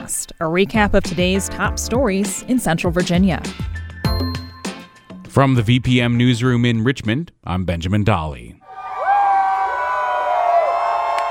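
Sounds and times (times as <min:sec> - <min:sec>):
speech: 0:00.2 - 0:03.7, 0:05.3 - 0:08.6
high whoops and shouts: 0:08.6 - 0:11.2
hundreds of people cheering outdoors on an avenue: 0:08.6 - 0:11.2.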